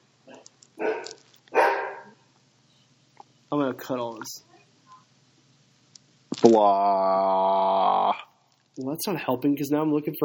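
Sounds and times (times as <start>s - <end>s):
dog barking: 0.3s - 2.2s
speech: 3.5s - 4.5s, 6.4s - 8.2s, 8.8s - 10.2s.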